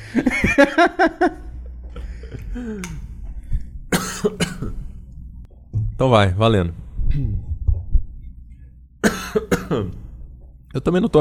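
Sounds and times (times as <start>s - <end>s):
speech: 0.1s - 1.4s, 2.6s - 3.1s, 6.0s - 7.4s, 10.8s - 11.1s
person coughing harshly: 3.9s - 4.8s, 9.0s - 10.1s.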